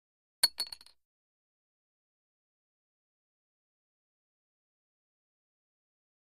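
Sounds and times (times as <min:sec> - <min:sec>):
casino poker chip bouncing: 0:00.4 - 0:00.9.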